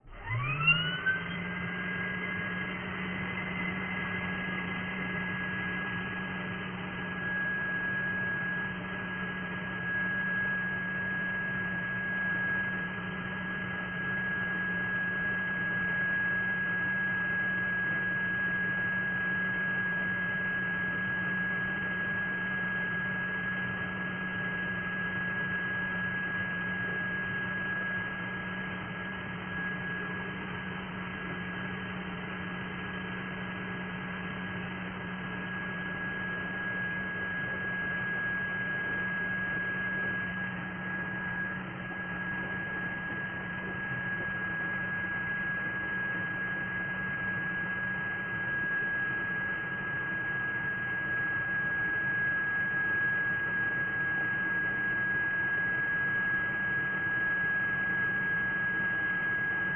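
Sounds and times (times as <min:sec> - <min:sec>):
very low pitch shifted vacuum cleaner sound effect: 0:00.0 - 0:59.7.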